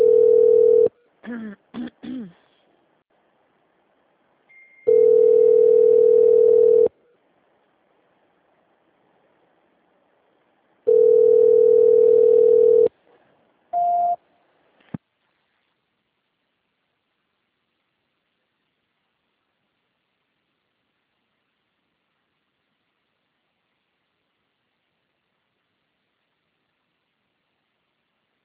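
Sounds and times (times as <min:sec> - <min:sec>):
telephone ringback tone on a line left ringing unanswered after a call transfer: 0:00.0 - 0:00.9, 0:04.8 - 0:06.9, 0:10.9 - 0:12.9.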